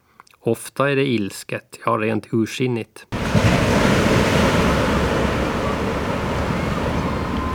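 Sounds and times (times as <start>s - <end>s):
speech: 0.4s - 3.6s
gusty rumble of wind: 3.2s - 7.5s
heavy sea waves rolling against rocks: 3.2s - 7.5s.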